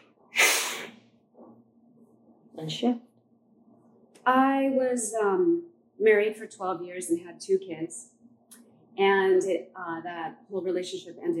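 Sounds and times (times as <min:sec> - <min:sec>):
forceful breath blown out: 0:00.3 - 0:01.0
speech: 0:02.6 - 0:03.1, 0:04.2 - 0:08.1, 0:09.0 - 0:11.3.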